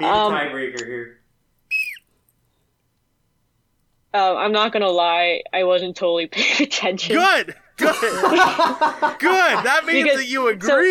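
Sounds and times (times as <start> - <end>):
speech: 0.0 - 1.2, 4.1 - 10.8
shrill blast from a blown whistle: 1.7 - 2.0
laughter: 7.2 - 10.4.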